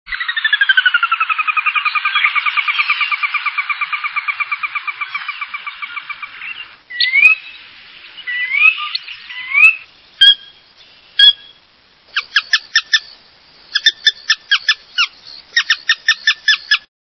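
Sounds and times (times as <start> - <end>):
Sora calls: 0.1 - 16.9.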